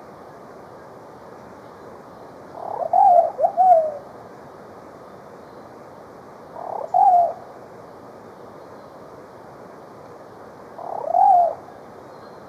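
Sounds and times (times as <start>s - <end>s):
faint steady hiss: 0.0s - 12.4s
plumbeous pigeon cooing in Ecuador: 2.6s - 4.0s, 6.6s - 7.4s, 10.8s - 11.7s.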